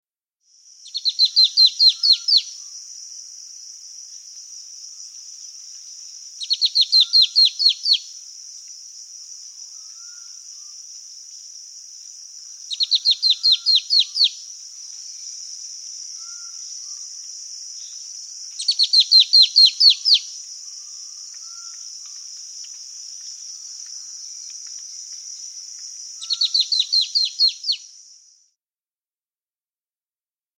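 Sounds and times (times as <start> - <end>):
Black-throated antbird calling in South America: 0.9 - 2.6, 6.4 - 8.1, 12.7 - 14.4, 18.6 - 20.3, 26.2 - 27.8.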